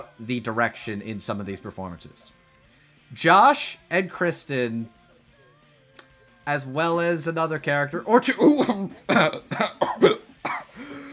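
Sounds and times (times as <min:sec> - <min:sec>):
speech: 0:00.0 - 0:02.4, 0:03.1 - 0:05.0, 0:06.4 - 0:10.1
person clearing throat: 0:08.4 - 0:11.1
person coughing: 0:08.4 - 0:11.1.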